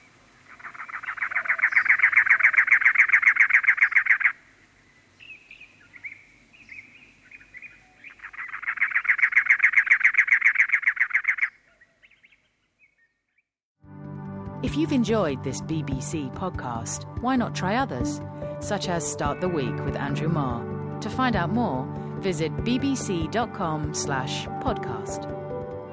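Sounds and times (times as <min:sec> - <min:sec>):
cactus wren singing harsh rapid chugging phrases: 0:00.0 - 0:13.5, 0:14.8 - 0:25.3
softer scratchy cactus wren calls: 0:00.5 - 0:04.4, 0:05.5 - 0:13.1
speech: 0:14.8 - 0:25.4.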